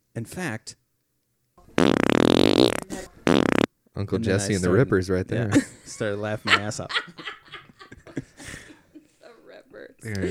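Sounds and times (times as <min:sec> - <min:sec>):
speech: 0:00.2 - 0:00.8, 0:04.0 - 0:07.4, 0:10.0 - 0:10.2
loud drawn-out fart with buzzing rippling texture: 0:01.8 - 0:03.7
laughter: 0:05.5 - 0:09.4.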